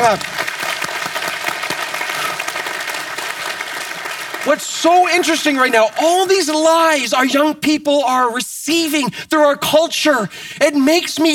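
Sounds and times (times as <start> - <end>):
church audience clapping: 0.0 - 7.3
speech: 0.1 - 0.4, 4.4 - 11.3.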